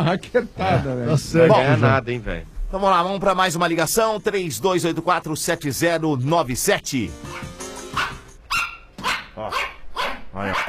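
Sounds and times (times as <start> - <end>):
speech: 0.0 - 7.6, 10.4 - 10.6
pug dog barking: 8.0 - 10.6.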